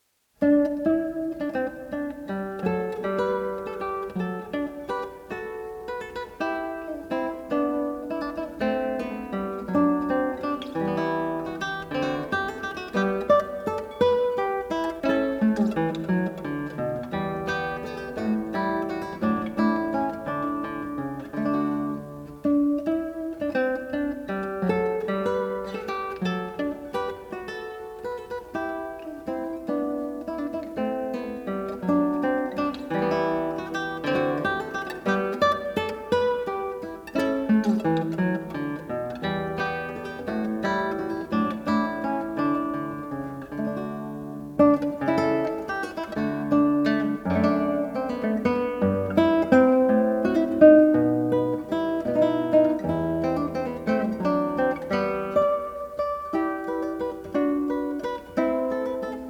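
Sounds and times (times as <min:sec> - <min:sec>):
solo guitar piece: 0:00.0 - 0:59.2.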